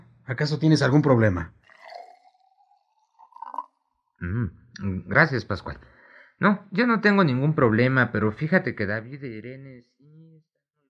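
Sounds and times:
speech: 0:00.3 - 0:01.6, 0:04.2 - 0:10.2
water pouring into a small glass: 0:01.6 - 0:04.2.

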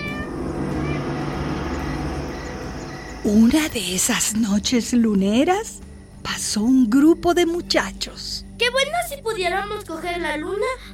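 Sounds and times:
cat yowling a courting meow on a moonlit night: 0:00.0 - 0:02.0
speech: 0:03.2 - 0:10.9.

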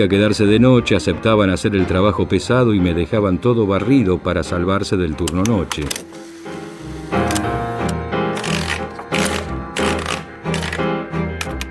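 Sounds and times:
speech: 0:00.0 - 0:06.2
low sustained musical tone: 0:04.6 - 0:08.4
typewriter keys clacking in a night-shift office at a metalworks: 0:08.4 - 0:11.6.

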